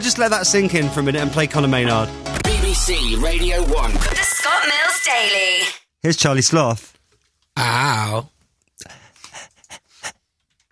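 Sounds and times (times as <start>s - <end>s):
speech: 0.0s - 6.9s, 7.6s - 8.3s
person panting in quick breathy puffs: 8.8s - 10.3s.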